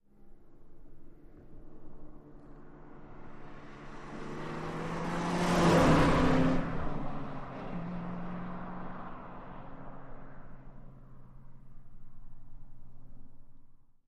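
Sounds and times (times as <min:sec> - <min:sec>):
car passing by fast: 0:02.4 - 0:13.4.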